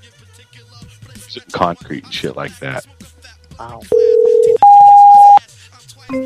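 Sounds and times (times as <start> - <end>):
speech: 1.6 - 3.0, 3.6 - 4.2
loud high-pitched electronic beep: 4.6 - 5.4.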